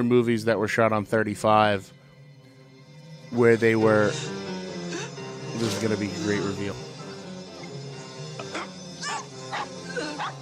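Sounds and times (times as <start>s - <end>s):
speech: 0.0s - 2.0s, 3.3s - 4.4s, 5.6s - 6.8s
dogs barking with yips: 8.5s - 10.4s.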